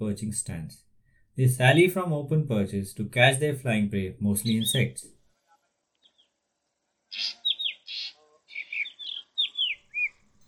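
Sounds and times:
speech: 0:00.0 - 0:05.2, 0:07.1 - 0:07.4
black drongo chattering calls and downslurred whistles: 0:07.1 - 0:10.2.

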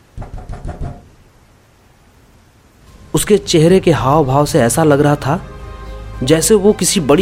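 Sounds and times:
person pounding on a car door with heavy dull thuds: 0:00.2 - 0:01.1
speech: 0:03.1 - 0:05.5, 0:06.2 - 0:07.2.

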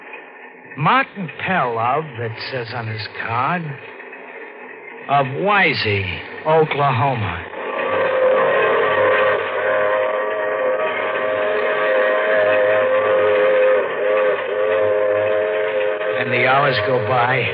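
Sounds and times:
freight train boxcar wheels rumbling on rails: 0:00.0 - 0:17.5
speech: 0:00.8 - 0:04.0, 0:05.1 - 0:07.5, 0:16.3 - 0:17.5.

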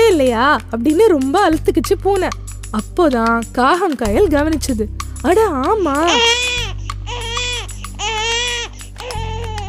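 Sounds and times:
speech: 0:00.4 - 0:06.5
baby crying: 0:05.8 - 0:09.6.

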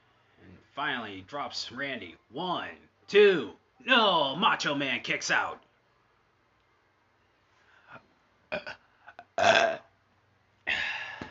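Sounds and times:
speech: 0:00.8 - 0:05.7, 0:08.5 - 0:08.8, 0:09.4 - 0:09.8
person belching: 0:08.5 - 0:09.9.

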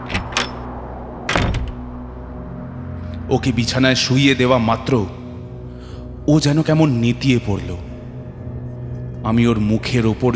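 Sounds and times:
door being shut in a house at night: 0:00.0 - 0:02.1
steady low hum: 0:00.0 - 0:10.3
speech: 0:03.3 - 0:05.2, 0:06.3 - 0:07.9, 0:09.2 - 0:10.3.

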